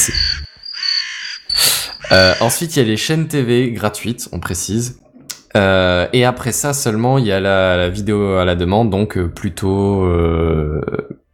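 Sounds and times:
crows cawing: 0:00.0 - 0:02.6
speech: 0:02.1 - 0:11.2.

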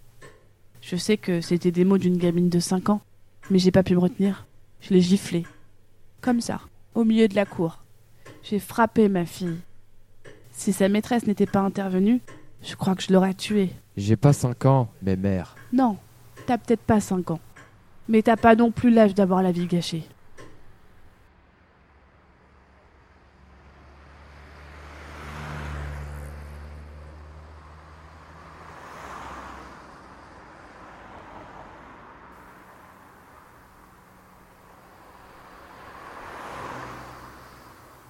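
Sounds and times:
speech: 0:00.9 - 0:05.6, 0:06.2 - 0:07.8, 0:08.4 - 0:09.7, 0:10.6 - 0:17.5, 0:18.1 - 0:20.1
car engine and tires roaring at speed: 0:21.4 - 0:38.0.

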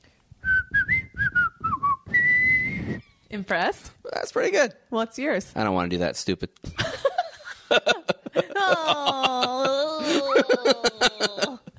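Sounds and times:
person whistling a short wavering tune: 0:00.4 - 0:03.1
speech: 0:03.3 - 0:07.1
laughter: 0:06.8 - 0:11.7.

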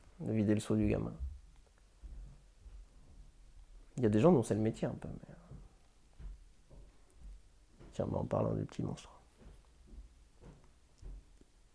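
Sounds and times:
speech: 0:00.2 - 0:01.3, 0:04.0 - 0:05.4, 0:08.0 - 0:09.2
heavy footsteps of a young girl going down a staircase: 0:00.8 - 0:03.5, 0:05.4 - 0:08.1, 0:09.3 - 0:11.4.

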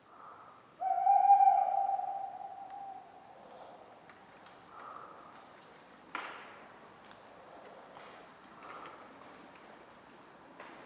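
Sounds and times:
tawny owl hooting on a cold autumn night: 0:00.2 - 0:03.8.

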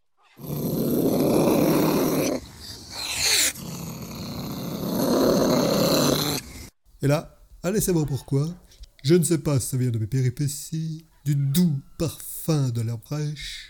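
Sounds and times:
cat growling: 0:00.2 - 0:06.7
speech: 0:07.0 - 0:13.6.

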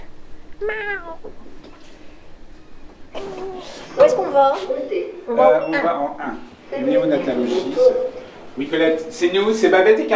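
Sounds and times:
person mimicking a cat meowing: 0:00.6 - 0:01.3
speech: 0:00.6 - 0:01.7, 0:03.2 - 0:10.1.

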